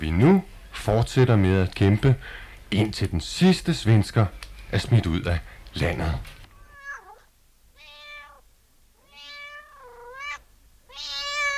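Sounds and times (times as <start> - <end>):
speech: 0.0 - 6.4
cat meowing: 6.5 - 11.5.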